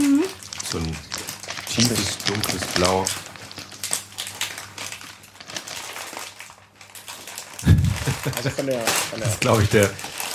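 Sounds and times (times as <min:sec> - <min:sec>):
blue crisp bag crinkling as it is squeezed: 0:00.0 - 0:10.3
speech: 0:01.8 - 0:03.2, 0:08.2 - 0:10.2.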